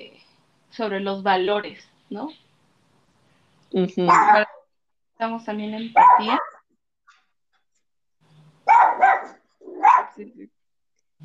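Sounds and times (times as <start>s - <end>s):
speech: 0.8s - 2.5s, 3.7s - 4.6s, 5.2s - 6.5s, 10.2s - 10.6s
small female pet dog barking with sharp high barks and yips: 4.1s - 4.6s, 6.0s - 6.6s, 8.7s - 10.2s.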